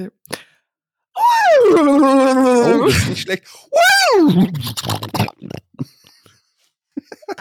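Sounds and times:
speech: 0.0 - 0.4, 1.6 - 5.6
person imitating a horse whinny and sputter: 1.2 - 5.8.

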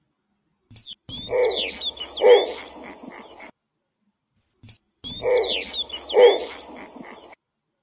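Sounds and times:
thin high chirping notes: 1.2 - 3.1, 5.1 - 7.0
snowy owl giving harsh raspy barking calls: 1.2 - 3.5, 5.1 - 7.4.

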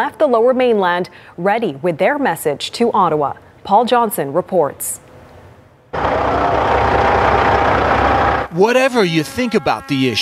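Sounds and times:
speech: 0.0 - 5.0, 8.5 - 10.2
diesel truck engines idling: 5.9 - 9.4.

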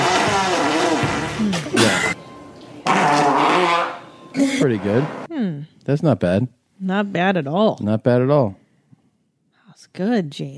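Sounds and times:
loud fart: 0.0 - 2.2, 2.8 - 4.0
speech: 4.6 - 8.6, 9.9 - 10.5.

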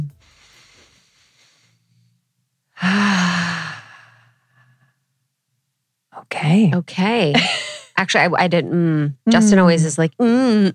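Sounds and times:
deep breath: 0.1 - 2.2, 2.8 - 5.1
speech: 6.5 - 10.7.

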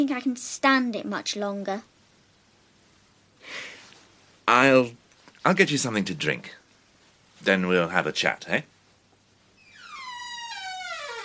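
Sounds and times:
speech: 0.0 - 1.9, 4.5 - 6.6, 7.4 - 8.7
door hinge creaking: 9.6 - 11.2.

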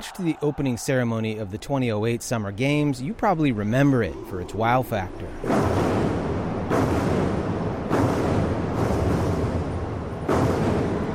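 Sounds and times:
speech: 0.0 - 6.0
huge massed drums pounding: 4.1 - 11.1.

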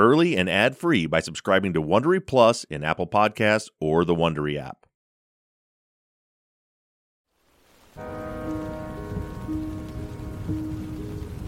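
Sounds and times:
speech: 0.0 - 4.9
light rain pattering on a surface: 7.3 - 11.4.

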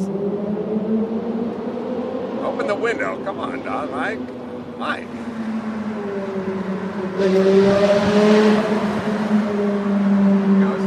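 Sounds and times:
car engine revving inside a tunnel: 0.0 - 10.8
speech: 2.7 - 5.4, 6.4 - 9.8.

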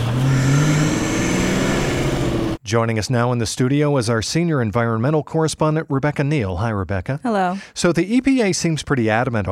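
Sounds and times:
truck engine starting and running: 0.0 - 2.6
speech: 2.7 - 9.5.

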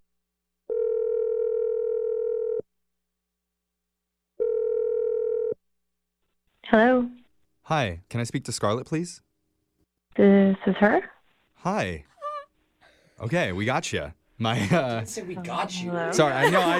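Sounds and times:
telephone dial tone: 0.7 - 2.6, 4.4 - 5.5
speech: 7.7 - 9.3, 10.2 - 12.1, 13.2 - 16.7
laughter: 14.5 - 16.7.

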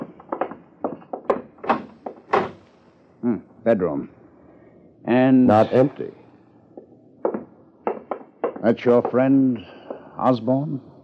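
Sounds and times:
door handle and frame clunks and rattles: 0.0 - 2.8, 6.8 - 9.4
door thumping as it swings free: 0.0 - 3.1, 6.7 - 10.4
speech: 3.2 - 4.2, 5.1 - 6.2, 8.6 - 10.9.

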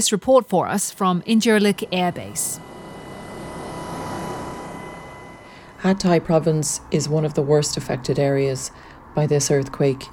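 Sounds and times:
speech: 0.0 - 2.8, 5.8 - 10.1
Black Hawk helicopter engine drone heard from inside the cabin over Hatay province: 1.2 - 7.1.

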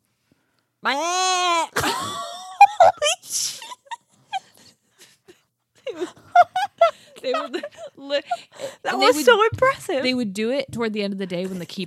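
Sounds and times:
person's voice imitating a screaming goat: 0.8 - 1.8
speech: 0.8 - 2.1, 8.9 - 11.8
laughter: 1.8 - 4.7, 5.8 - 9.2.

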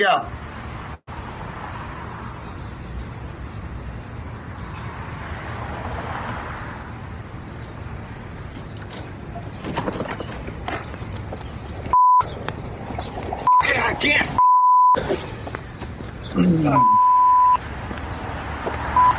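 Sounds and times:
speech: 0.0 - 0.4
mid-pitched phone call tone beeping: 11.9 - 12.3, 13.4 - 13.7, 14.4 - 15.0, 16.7 - 17.6, 19.0 - 19.1.

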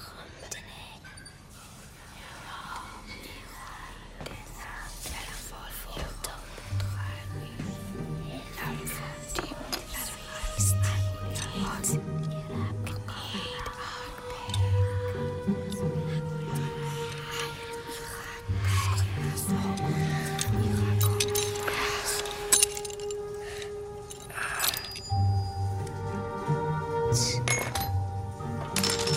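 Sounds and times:
layered unintelligible whispering: 1.9 - 25.1
tonal drones: 6.2 - 29.1.

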